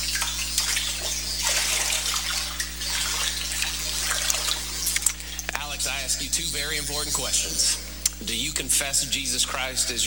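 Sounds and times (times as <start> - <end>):
water sloshing as a person wades into a baptismal pool: 0.0 - 5.6
low constant hum: 0.0 - 10.0
speech: 6.2 - 10.0.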